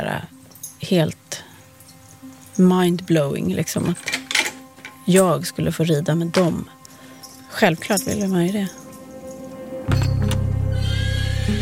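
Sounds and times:
speech: 0.0 - 1.5, 2.6 - 4.1, 5.1 - 6.8, 7.5 - 8.8
horse neighing: 10.6 - 11.6.

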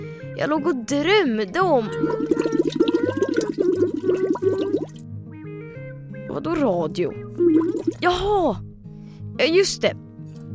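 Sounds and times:
speech: 0.4 - 4.9, 6.4 - 8.6, 9.4 - 10.0
goldfish blowing bubbles in water: 1.8 - 5.0, 7.4 - 8.1.

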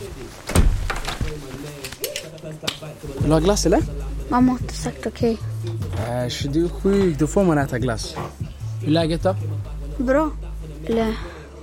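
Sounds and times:
door shutting thud: 0.5 - 1.4
speech: 2.6 - 11.4.

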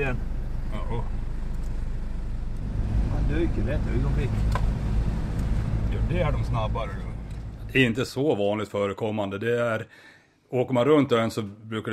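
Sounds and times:
speech: 0.0 - 1.2, 3.3 - 4.6, 6.1 - 7.0, 7.7 - 11.9
car engine rumbling while jolting over rough ground: 0.0 - 8.4.

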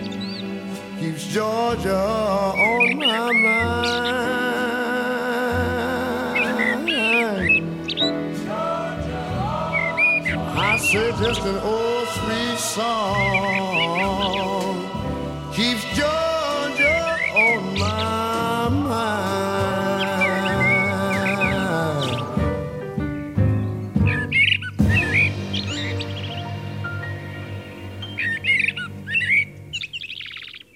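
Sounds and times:
Eurasian blackbird in Sweden singing fluting warbling phrases: 0.0 - 30.7
slow instrumental music: 0.0 - 30.7
speech: 1.0 - 4.8, 10.9 - 14.4.

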